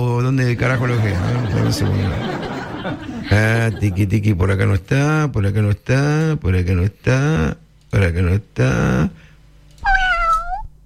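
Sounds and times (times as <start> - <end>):
speech: 0.2 - 9.2
laughter: 0.6 - 4.2
cat meowing: 9.8 - 10.7.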